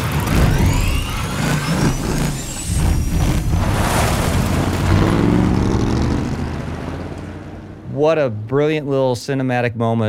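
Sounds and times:
rising mechanical whine: 0.0s - 7.3s
designed film car engine starting up in the desert: 0.0s - 8.5s
speech: 8.0s - 10.0s.

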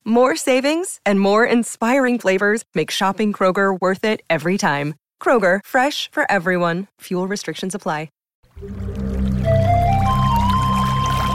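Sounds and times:
speech: 0.1s - 9.0s
water pouring into a container: 8.5s - 11.3s.

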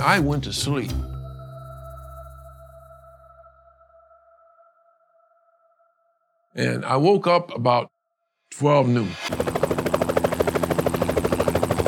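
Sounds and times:
speech: 0.0s - 1.1s, 6.6s - 9.8s
helicopter rotor chopping: 9.0s - 11.8s.

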